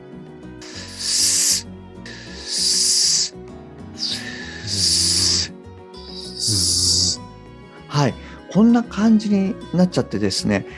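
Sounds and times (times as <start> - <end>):
voice producing sharp hissing s-like fricative bursts: 0.6 - 3.4, 4.0 - 7.2
speech: 8.0 - 10.7.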